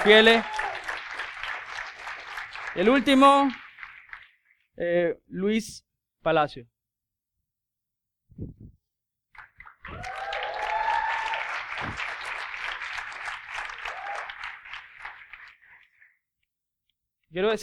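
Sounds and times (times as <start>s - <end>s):
speech: 0.0s - 0.6s, 2.8s - 3.6s, 4.8s - 6.7s, 8.4s - 8.7s, 17.3s - 17.6s
crowd applauding: 0.0s - 4.4s, 9.4s - 16.2s.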